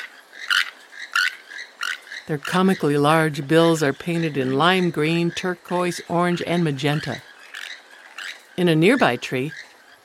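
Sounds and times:
small group of keel-billed toucans calling from a giant fig tree canopy: 0.0s - 10.0s
speech: 2.3s - 7.3s, 8.6s - 9.6s.

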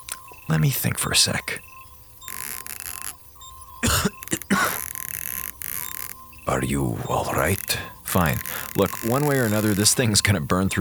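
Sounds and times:
low electrical hum: 0.0s - 10.7s
steady hiss: 0.0s - 10.7s
speech: 0.5s - 1.7s, 6.6s - 10.7s
person coughing: 3.8s - 4.8s.

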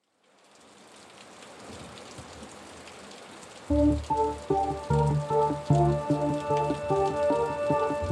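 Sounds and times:
steady rain: 0.0s - 8.1s
pulsing music: 3.7s - 8.1s.

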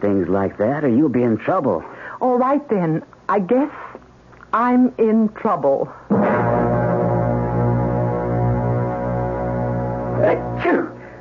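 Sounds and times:
speech: 0.0s - 3.9s, 4.5s - 6.3s
steady low humming drone: 6.1s - 11.1s
person sneezing: 10.2s - 11.0s.

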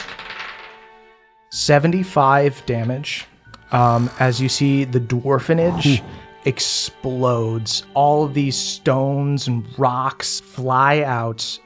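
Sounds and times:
handful of dice clattering and rattling: 0.0s - 1.0s
speech: 1.6s - 11.6s.

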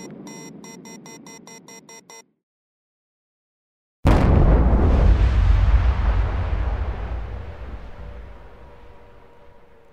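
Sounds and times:
tonal beeps: 0.0s - 2.3s
deep booming rumble of amplified infrasound recording: 4.1s - 9.3s.

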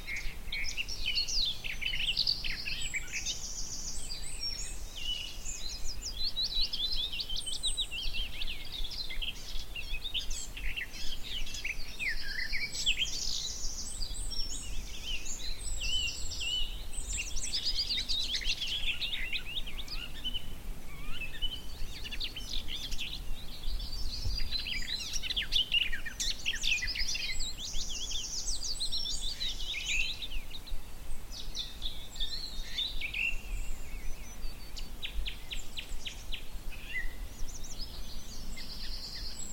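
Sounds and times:
male garden warbler singing on a hillside: 0.0s - 39.5s.

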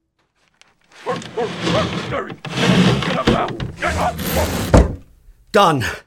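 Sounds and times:
heavy furniture scraping across floor as barricade in front of front door: 0.9s - 5.1s
strained voices: 1.0s - 4.8s
dull wooden thuds: 1.0s - 5.1s
speech: 1.1s - 4.8s, 5.5s - 6.0s.

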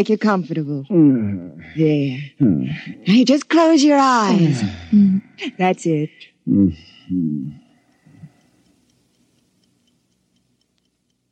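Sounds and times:
speech: 0.0s - 7.6s
clock ticking faintly in a quiet room: 1.8s - 11.3s.

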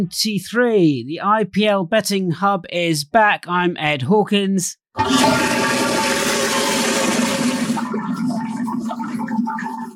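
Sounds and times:
speech: 0.0s - 5.6s
toilet flushing: 5.0s - 9.9s.

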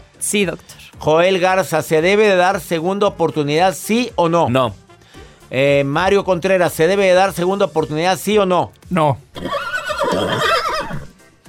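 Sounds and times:
speech: 0.2s - 4.8s, 5.5s - 9.6s, 10.2s - 10.6s
horse neighing: 9.3s - 11.2s.

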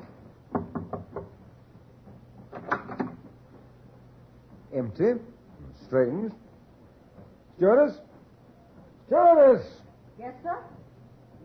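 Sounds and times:
knocking on a cabin door: 0.5s - 1.6s
speech: 4.8s - 6.4s, 7.6s - 8.1s, 9.1s - 10.8s.

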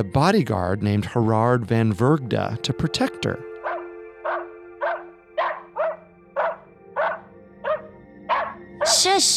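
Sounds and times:
speech: 0.0s - 3.5s, 8.9s - 9.3s
dog barking: 3.6s - 9.1s.

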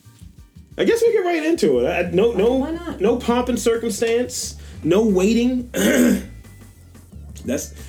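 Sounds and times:
speech: 0.8s - 6.3s, 7.4s - 7.8s
short rough throat-clearing coughs: 5.7s - 6.4s.

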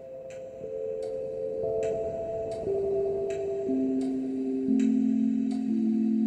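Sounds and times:
grandfather clock pendulum ticking: 0.0s - 6.2s.

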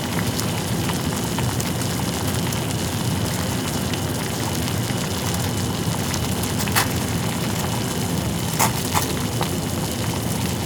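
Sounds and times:
water boiling and bubbling with fine crackling pops: 0.0s - 10.6s.

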